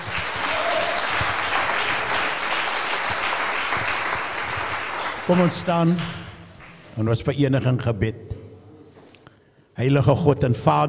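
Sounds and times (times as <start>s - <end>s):
congregation applauding at a church revival service in a correctional centre: 0.0s - 6.9s
speech: 5.3s - 6.2s, 7.0s - 8.3s, 9.8s - 10.8s.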